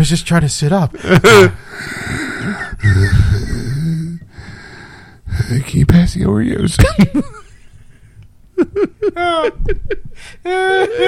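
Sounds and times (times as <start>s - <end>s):
speech: 0.0s - 3.3s, 5.5s - 7.3s, 9.1s - 11.0s
laughter: 1.0s - 1.6s, 2.4s - 3.9s, 6.8s - 11.0s
heavy wheezy breathing with rasping whistles: 1.6s - 5.6s.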